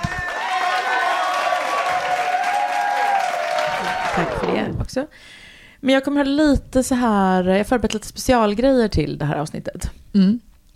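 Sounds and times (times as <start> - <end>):
big crowd applause: 0.0 - 4.8
speech: 4.2 - 10.5.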